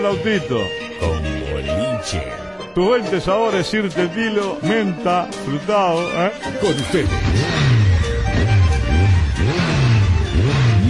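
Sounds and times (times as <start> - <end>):
speech: 0.0 - 7.6
motorcycle engine revving with rumbling idle: 6.5 - 10.8.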